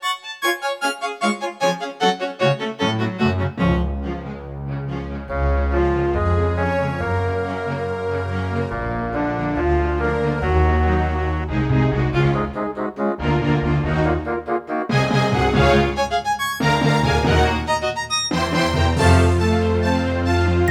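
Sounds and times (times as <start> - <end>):
symphony: 0.0 - 20.6.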